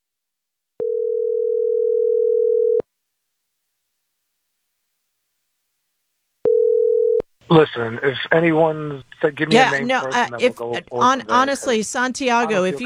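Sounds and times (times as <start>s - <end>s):
telephone line tone while calling someone back: 0.8s - 2.8s, 6.4s - 7.2s
speech: 7.5s - 12.8s.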